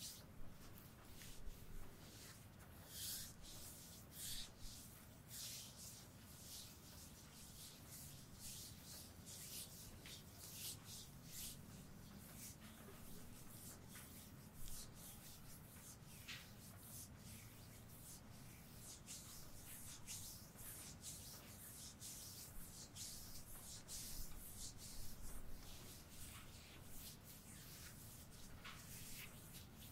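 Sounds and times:
hands rubbing and kneading over fabric and skin in a shoulder massage: 0.0 - 29.9.

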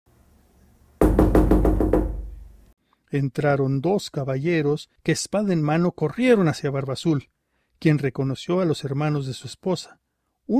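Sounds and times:
loud knocking on a door: 1.0 - 2.5
booming resonance of knocks on a door: 1.0 - 2.6
speech: 3.1 - 10.5.

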